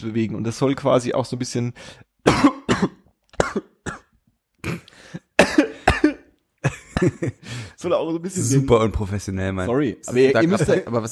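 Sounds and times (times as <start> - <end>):
speech: 0.0 - 3.7, 4.6 - 5.2, 6.6 - 11.1
throat clearing: 2.3 - 6.3
person coughing: 2.3 - 7.4.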